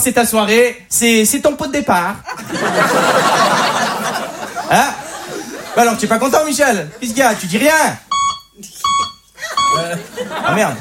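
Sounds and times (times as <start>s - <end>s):
speech: 0.0s - 5.0s, 5.8s - 9.0s, 9.8s - 10.7s
laughter: 2.2s - 7.9s, 9.4s - 10.7s
sharp electronic beep: 8.1s - 9.9s.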